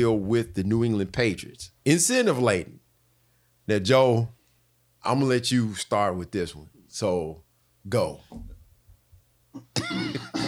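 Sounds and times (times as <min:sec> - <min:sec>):
speech: 0:00.0 - 0:02.8, 0:03.7 - 0:04.4, 0:05.0 - 0:08.5, 0:09.6 - 0:10.4
loud gravelly throat clearing: 0:09.6 - 0:10.4.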